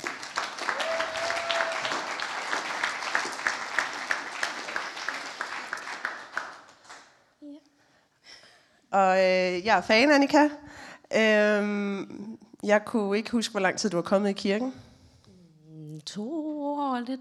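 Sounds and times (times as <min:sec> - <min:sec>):
church audience applauding: 0:00.0 - 0:07.1
whistle or cheer: 0:00.7 - 0:02.0
speech: 0:08.9 - 0:14.8, 0:17.0 - 0:17.1.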